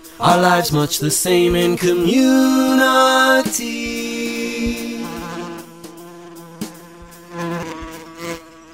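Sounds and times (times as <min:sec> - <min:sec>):
bee buzzing: 0:00.0 - 0:08.7.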